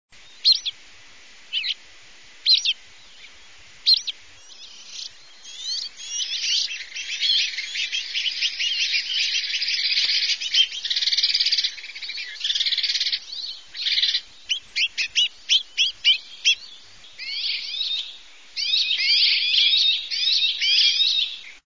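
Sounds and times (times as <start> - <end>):
house sparrow singing: 0.2 - 0.8, 1.5 - 1.8, 2.4 - 21.6.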